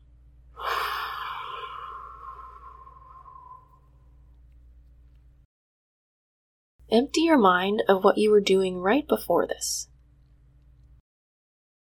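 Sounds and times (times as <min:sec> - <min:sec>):
deep breath in and out: 0:00.5 - 0:04.2
speech: 0:06.9 - 0:09.9.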